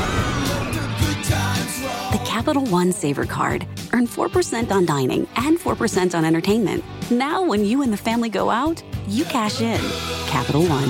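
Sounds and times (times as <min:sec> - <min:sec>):
people screaming on an amusement park ride: 0:00.0 - 0:02.1
speech: 0:02.4 - 0:10.8.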